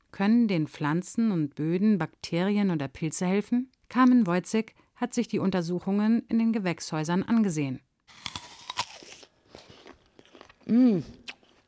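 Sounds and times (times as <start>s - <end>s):
speech: 0.1s - 8.3s, 10.7s - 11.2s
biting into a big juicy crunchy apple: 8.1s - 11.6s
crackling chewing of apple: 8.2s - 11.6s
person humming an appreciative mmm: 10.6s - 11.4s.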